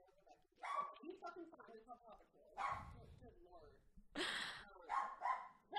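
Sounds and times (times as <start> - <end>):
dog barking and yipping: 0.6 - 1.0, 2.6 - 3.0, 4.9 - 5.6.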